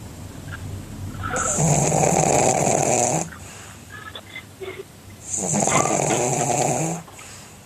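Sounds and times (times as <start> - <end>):
flat-faced dog snoring while asleep: 1.2 - 3.4, 5.2 - 7.4.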